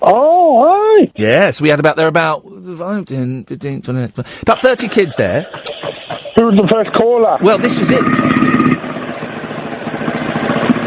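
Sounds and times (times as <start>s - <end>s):
speech: 0.1s - 8.6s
laughter: 4.4s - 6.9s
motorbike engine running: 7.4s - 10.8s.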